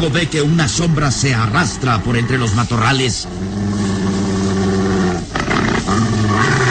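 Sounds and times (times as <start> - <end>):
speech: 0.0 - 3.9
large dog growling deeply: 1.5 - 6.6.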